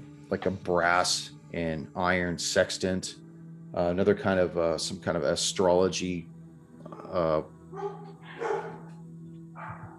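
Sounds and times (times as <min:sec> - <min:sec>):
speech: 0:00.3 - 0:08.1
dogs barking: 0:06.9 - 0:08.9, 0:09.6 - 0:09.9.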